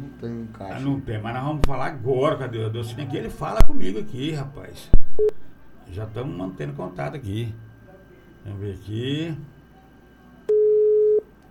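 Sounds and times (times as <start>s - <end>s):
speech: 0.2s - 7.7s, 8.4s - 9.5s
telephone tone on a call with no line: 5.2s - 5.4s, 10.5s - 11.3s.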